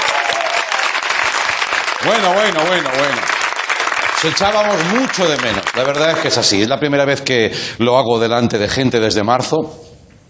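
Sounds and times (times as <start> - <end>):
audience applause: 0.0 - 6.7
speech: 2.0 - 3.3, 4.2 - 9.8.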